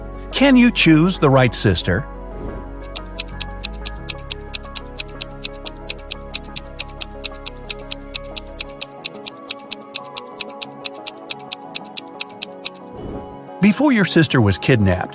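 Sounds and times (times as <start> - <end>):
low droning musical bed: 0.0 - 15.1
speech: 0.3 - 2.1, 13.8 - 15.1
7-second countdown clock ticking: 2.8 - 12.9.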